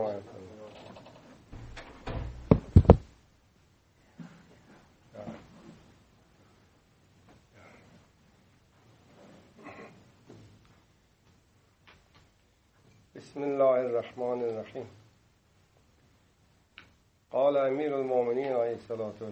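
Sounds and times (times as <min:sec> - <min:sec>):
door being shut: 0:01.5 - 0:03.1
speech: 0:13.3 - 0:15.0, 0:17.5 - 0:19.3.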